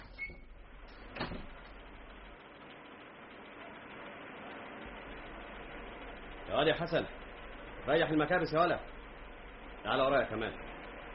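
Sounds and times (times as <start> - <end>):
door opening: 0.0 - 1.7
speech: 6.5 - 7.2, 7.9 - 9.0, 9.8 - 10.7.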